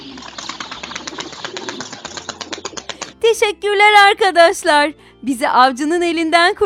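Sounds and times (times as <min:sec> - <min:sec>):
parrots freed from a net flapping wings and taking off: 0:00.0 - 0:03.2
speech: 0:03.3 - 0:06.6.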